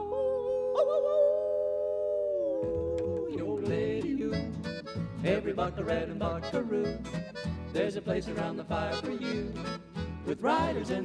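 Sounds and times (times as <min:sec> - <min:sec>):
person howling imitating a coyote: 0:00.0 - 0:03.4
music with guitar-like strums: 0:04.4 - 0:11.0
speech: 0:05.2 - 0:11.0.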